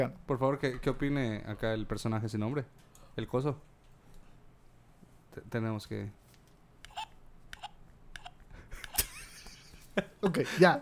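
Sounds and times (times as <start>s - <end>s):
speech: 0.0s - 3.7s, 5.3s - 6.2s, 10.0s - 10.8s
short sharp hiccups: 6.9s - 9.1s.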